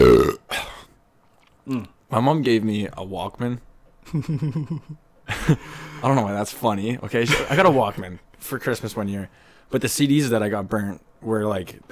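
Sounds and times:
loud voiced burp: 0.0 - 0.9
speech: 1.7 - 11.9.

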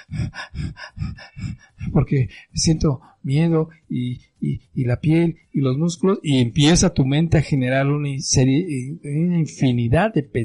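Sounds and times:
person imitating hyperventilating with rapid panting breaths: 0.0 - 3.2
speech: 0.1 - 1.0, 2.0 - 10.4.

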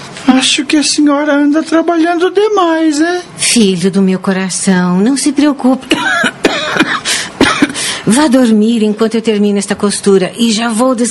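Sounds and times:
speech: 0.3 - 6.4, 8.1 - 11.0
woman coughing: 5.8 - 7.9.

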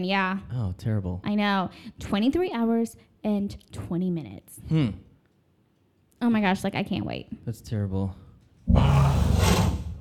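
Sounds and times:
speech: 0.0 - 5.1, 6.2 - 9.5
deep gravelly wolf-like growl: 8.7 - 10.0.

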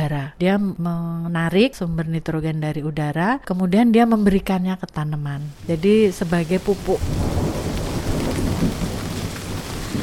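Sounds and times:
speech: 0.0 - 7.6
steady rain pouring down: 5.5 - 10.0
deep rumbling roll of thunder: 5.6 - 10.0.

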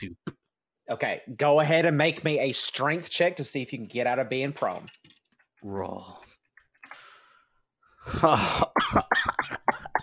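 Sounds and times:
speech: 0.0 - 0.3, 0.9 - 5.0, 5.6 - 6.2, 8.0 - 10.0
faint breathy inhale: 6.9 - 8.2
person acting out an exaggerated raspy coughing fit: 8.2 - 10.0.

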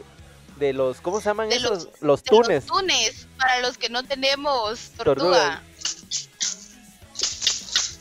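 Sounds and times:
speech: 0.6 - 6.2
chinchín rattle being shaken: 4.7 - 5.0, 5.8 - 7.9.

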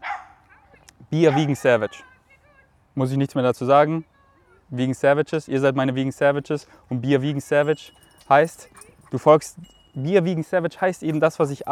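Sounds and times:
dog barking: 0.0 - 1.6
speech: 1.1 - 2.1, 3.0 - 4.1, 4.7 - 11.7.

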